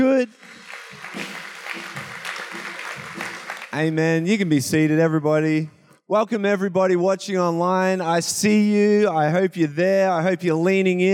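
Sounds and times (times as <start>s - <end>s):
speech: 0.0s - 1.2s, 3.8s - 11.1s
large church audience clapping and applauding: 0.0s - 4.3s.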